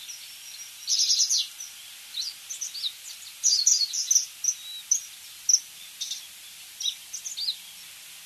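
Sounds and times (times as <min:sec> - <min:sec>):
Japanese wagtail singing buzzy and twittering notes: 0:00.0 - 0:07.9.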